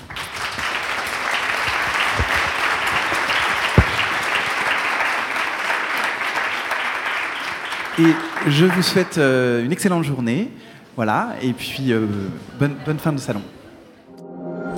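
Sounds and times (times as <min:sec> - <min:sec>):
room full of people applauding: 0:00.0 - 0:09.4
single sharp clap: 0:01.7 - 0:05.1
speech: 0:08.0 - 0:13.6.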